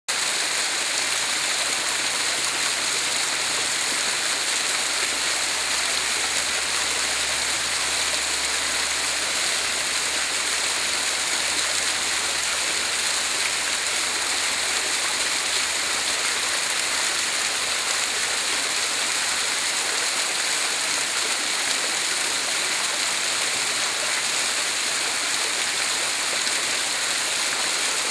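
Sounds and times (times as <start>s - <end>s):
waterfall: 0.1s - 28.0s.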